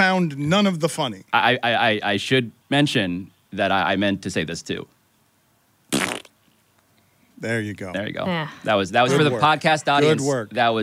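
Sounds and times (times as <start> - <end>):
speech: 0.1 - 5.0, 7.4 - 10.8
loud buzzy fart noise: 5.9 - 6.4.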